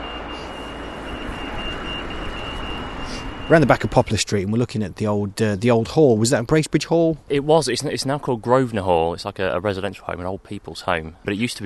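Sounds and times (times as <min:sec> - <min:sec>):
pedestrian crossing button signal tone: 0:00.0 - 0:04.3
loud continuous road traffic noise: 0:00.0 - 0:11.6
speech: 0:03.5 - 0:11.6.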